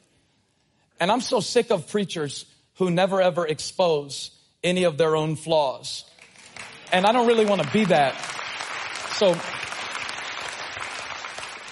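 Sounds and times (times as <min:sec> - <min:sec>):
speech: 0:01.0 - 0:06.1, 0:06.9 - 0:08.4, 0:09.2 - 0:09.6
dense steady audience applause: 0:06.3 - 0:11.6.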